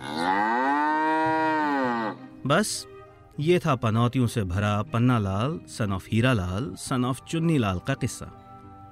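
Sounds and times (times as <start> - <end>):
cow mooing: 0.0 - 2.3
speech: 2.5 - 8.4.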